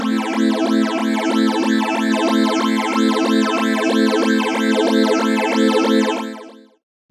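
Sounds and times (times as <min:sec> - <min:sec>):
Bi-Tron phaser effect: 0:00.2 - 0:06.6.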